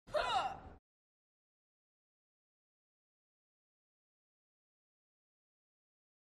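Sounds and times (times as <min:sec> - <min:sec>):
cheerleaders yelling: 0:00.1 - 0:00.7.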